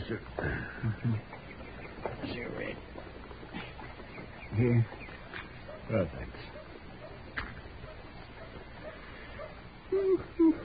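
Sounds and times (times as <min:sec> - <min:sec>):
quiet hissy background: 0:00.0 - 0:10.6
speech: 0:00.1 - 0:01.4, 0:04.6 - 0:05.0, 0:05.9 - 0:06.4
dog whimpering with short thin whines: 0:09.9 - 0:10.6.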